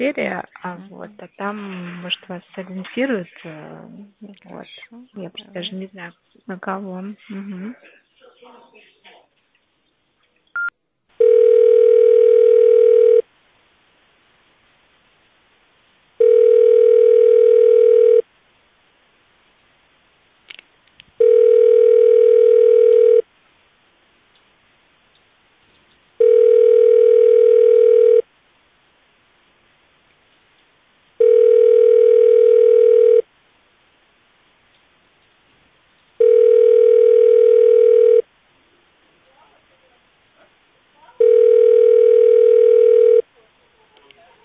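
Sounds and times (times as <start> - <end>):
speech: 0.0 - 8.9
telephone line tone while a call is being transferred: 10.6 - 13.2, 16.2 - 18.2, 21.2 - 23.2, 26.2 - 28.2, 31.2 - 33.2, 36.2 - 38.2, 41.2 - 43.2
faint clicks: 20.4 - 21.2, 24.3 - 26.2, 30.0 - 31.2, 33.8 - 36.4.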